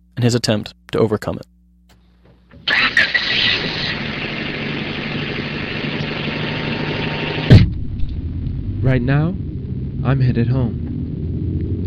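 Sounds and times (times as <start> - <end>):
speech: 0.2 - 1.5, 8.8 - 10.9
car engine running: 2.6 - 11.8
low thump: 7.5 - 10.0.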